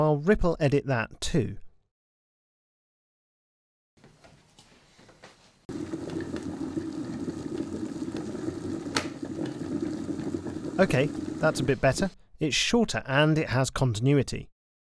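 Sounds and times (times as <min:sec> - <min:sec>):
speech: 0:00.0 - 0:01.6, 0:10.8 - 0:14.5
electric kettle water boiling: 0:05.7 - 0:12.1.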